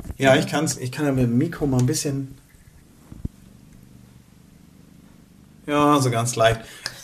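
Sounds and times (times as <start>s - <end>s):
domestic cat purring: 0.0s - 7.0s
speech: 0.2s - 2.4s, 5.7s - 6.9s.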